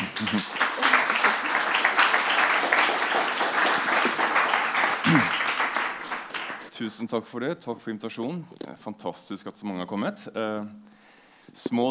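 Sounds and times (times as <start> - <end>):
crowd applauding to welcome a professor: 0.0 - 6.7
speech: 0.2 - 0.5, 6.8 - 11.0, 11.6 - 11.8.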